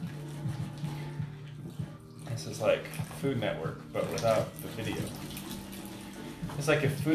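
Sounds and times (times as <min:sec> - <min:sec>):
water pouring into pancake batter: 0:00.0 - 0:07.1
speech: 0:02.4 - 0:05.4, 0:06.6 - 0:07.1.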